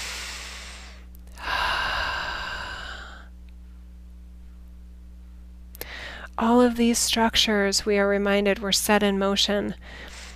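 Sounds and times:
deep breath drawn during a guided reflective session: 0.0 - 3.3, 5.8 - 6.4, 9.8 - 10.3
speech: 6.4 - 10.1.

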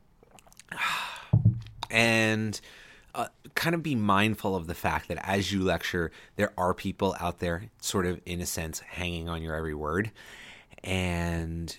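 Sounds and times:
person sipping coffee from a cup: 0.2 - 0.8
speech: 1.9 - 11.7.

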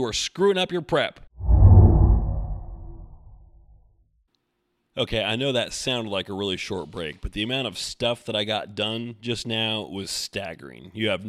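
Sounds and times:
speech: 0.0 - 1.2, 5.0 - 11.2
low breathy whoosh transition sweep: 1.4 - 3.7.

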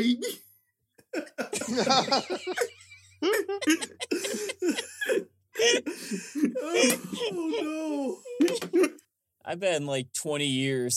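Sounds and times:
speech: 0.0 - 0.4, 1.1 - 10.9
laughter: 1.2 - 4.9
person coughing: 2.6 - 9.0.

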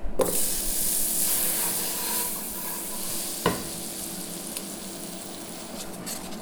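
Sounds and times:
butter melting and sizzling in a frying pan: 0.2 - 6.4.

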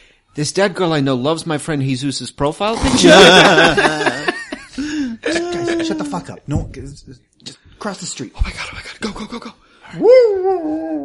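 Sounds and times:
speech: 0.4 - 4.3, 6.2 - 11.0
laughter: 2.8 - 6.4
dog howling and whimpering: 9.9 - 11.0.

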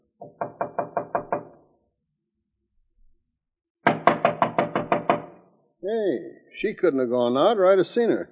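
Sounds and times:
knocking on a dressing room door: 0.2 - 1.6, 3.8 - 5.4
speech: 5.9 - 8.3.

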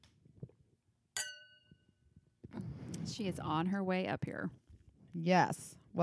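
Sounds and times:
quiet room noise: 0.0 - 6.0
wine glasses holding Merlot clinking in a toast: 1.2 - 1.7
speech: 3.1 - 4.6, 5.2 - 6.0.

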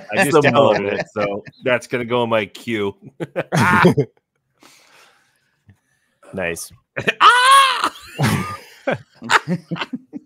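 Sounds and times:
laughter: 0.0 - 1.9, 3.0 - 4.1, 7.0 - 10.2
speech: 0.1 - 4.2, 6.3 - 7.4, 8.1 - 10.1
stock movie scream sound effect: 7.2 - 8.0.

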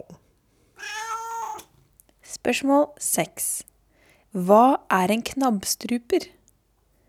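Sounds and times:
person imitating a cat meowing as a quiz answer: 0.8 - 1.7
speech: 2.4 - 3.7, 4.4 - 6.4.

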